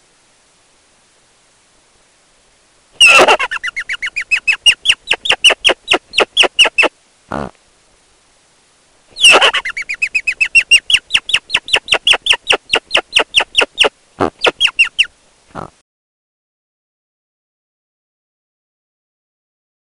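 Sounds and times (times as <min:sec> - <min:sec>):
rock hyrax song: 0:03.0 - 0:07.5, 0:09.2 - 0:15.8.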